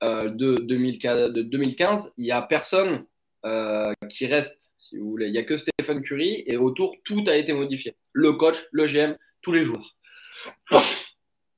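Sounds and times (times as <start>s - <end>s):
speech: 0.3s - 11.0s
loud sneeze with intake of breath: 10.7s - 11.2s.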